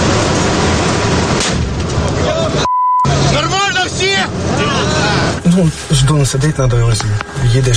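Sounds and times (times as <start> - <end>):
armored vehicle engine roar carrying fighters toward outskirts of Kostiantynivka: 0.0 - 7.7
voices: 2.0 - 7.7
speech: 5.6 - 7.7.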